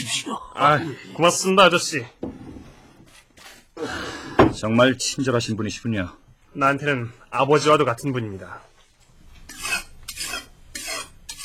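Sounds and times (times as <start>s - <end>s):
speech: 0.1s - 2.3s, 3.8s - 8.7s
knife being sharpened with rasping strokes: 9.5s - 11.4s.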